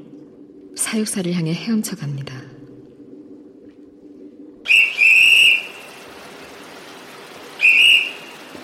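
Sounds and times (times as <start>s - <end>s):
speech: 0.8s - 2.4s
zookeeper blowing a shrill whistle: 4.7s - 5.7s, 7.6s - 8.3s.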